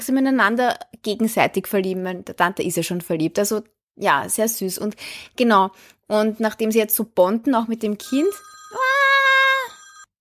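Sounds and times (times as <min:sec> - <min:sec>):
speech: 0:00.0 - 0:08.9
phone ringing with an electronic tone: 0:08.1 - 0:10.1.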